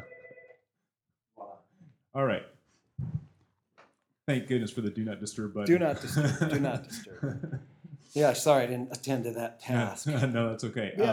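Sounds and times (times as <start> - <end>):
telephone ringing with a steady electronic tone: 0.0 - 0.6
speech: 2.2 - 2.5, 4.3 - 11.1
laughter: 5.7 - 7.8.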